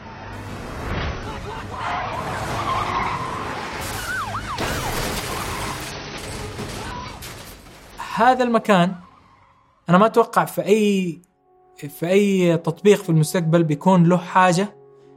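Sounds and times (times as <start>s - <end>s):
police car engines roaring in a junkyard chase: 0.0s - 10.0s
police car tires squealing and skidding in a junkyard: 0.0s - 10.0s
speech: 8.2s - 9.0s, 9.9s - 14.8s.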